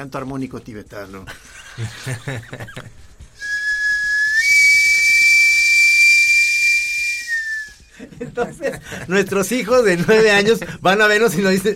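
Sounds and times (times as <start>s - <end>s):
speech: 0.0s - 3.2s, 8.2s - 11.7s
laughter: 1.3s - 3.2s, 7.9s - 10.6s
steam whistle from a sweet potato cart: 3.4s - 7.8s.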